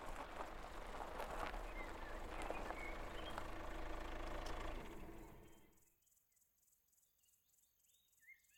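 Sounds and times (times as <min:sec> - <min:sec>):
car engine rumbling as the car slows down: 0:00.0 - 0:05.7.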